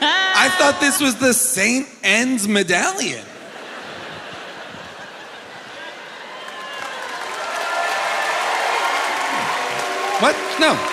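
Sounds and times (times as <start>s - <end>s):
speech: 0.5s - 3.3s, 10.2s - 10.9s
laughter: 3.2s - 7.2s
audience applause: 5.2s - 10.9s.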